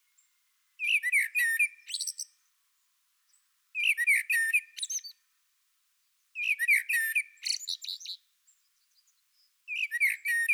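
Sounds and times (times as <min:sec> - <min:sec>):
common blackbird song: 0:00.0 - 0:05.3, 0:06.1 - 0:10.5.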